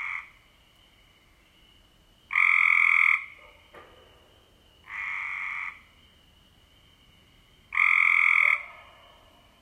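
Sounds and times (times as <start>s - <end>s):
Cope's gray treefrog rough buzzy trills: 0.0s - 1.6s, 2.2s - 3.7s, 4.8s - 8.7s.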